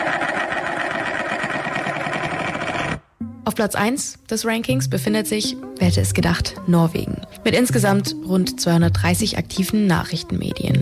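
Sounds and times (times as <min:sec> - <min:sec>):
globe being spun on its stand: 0:00.0 - 0:03.0
speech: 0:03.5 - 0:10.7.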